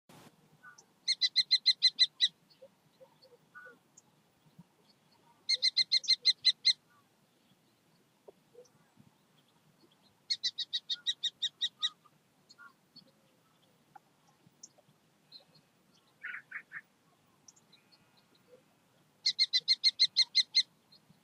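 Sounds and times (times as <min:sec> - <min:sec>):
kestrel calling: 0:00.6 - 0:04.1, 0:05.3 - 0:07.1, 0:09.8 - 0:16.9, 0:19.2 - 0:21.2.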